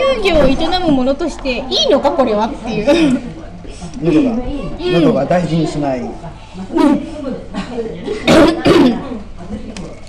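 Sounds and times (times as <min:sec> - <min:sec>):
speech: 0:00.1 - 0:03.3, 0:04.0 - 0:07.1
person coughing and choking on food that stings the throat: 0:07.6 - 0:09.1.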